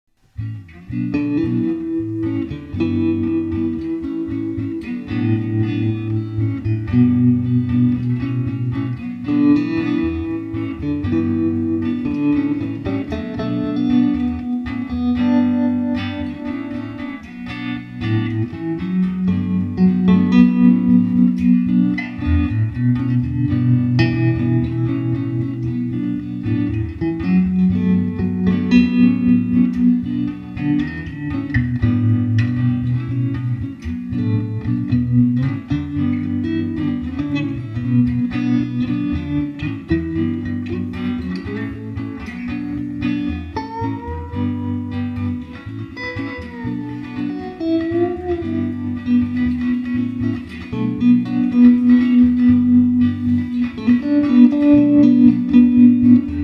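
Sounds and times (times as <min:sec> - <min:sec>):
tremolo solo: 0:00.7 - 0:56.4.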